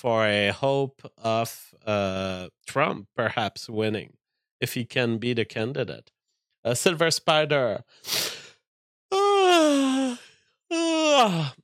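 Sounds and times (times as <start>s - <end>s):
speech: 0.0s - 8.4s, 10.7s - 11.6s
sharp breathy inhale: 7.9s - 8.6s
person yawning: 9.1s - 11.6s.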